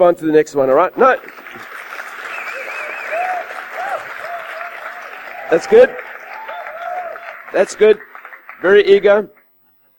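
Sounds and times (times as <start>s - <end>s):
speech: 0.0s - 1.7s, 5.5s - 6.0s, 7.5s - 9.4s
crowd applauding: 1.0s - 9.2s
people whooping and cheering: 2.2s - 7.5s.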